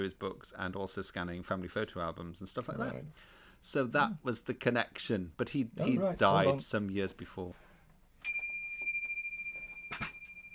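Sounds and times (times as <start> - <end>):
speech: 0.0 - 7.6
bright bell ding: 8.2 - 10.5.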